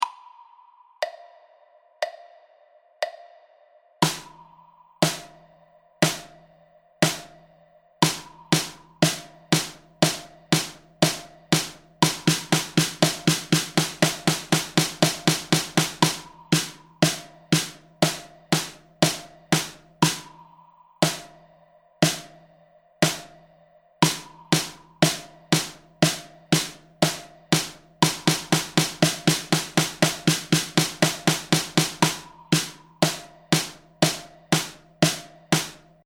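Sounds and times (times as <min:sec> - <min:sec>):
drum stroke: 0:04.0 - 0:05.4, 0:06.0 - 0:07.4, 0:08.0 - 0:20.4, 0:21.0 - 0:21.4, 0:22.0 - 0:22.4, 0:23.0 - 0:23.4, 0:24.0 - 0:36.0.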